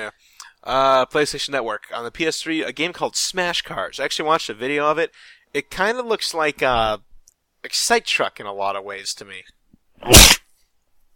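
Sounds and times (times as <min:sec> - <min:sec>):
speech: 0:00.0 - 0:10.4
sharp loud breathy human sneeze: 0:10.0 - 0:10.4.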